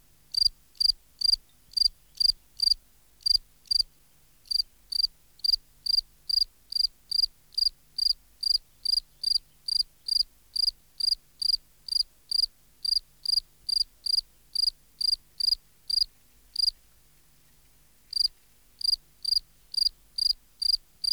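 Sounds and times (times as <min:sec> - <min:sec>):
field cricket Gryllus campestris chirping: 0:00.4 - 0:03.8, 0:04.5 - 0:16.7, 0:18.1 - 0:21.1.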